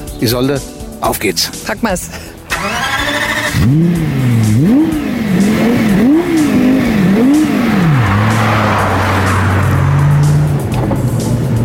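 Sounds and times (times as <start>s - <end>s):
speech: 0.2s - 2.9s, 3.6s - 5.0s
Lexus LFA sports car engine revving: 2.5s - 11.6s.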